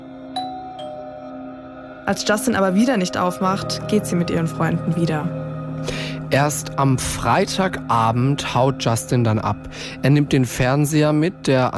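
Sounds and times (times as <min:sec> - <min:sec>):
apartment doorbell two-note chime: 0:00.3 - 0:01.6
speech: 0:02.1 - 0:11.7.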